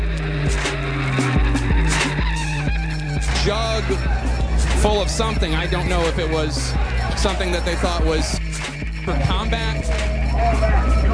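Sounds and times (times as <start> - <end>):
souped-up Honda Civic engine revving hard: 0.0 - 11.1
speech: 3.4 - 8.5, 9.1 - 11.0.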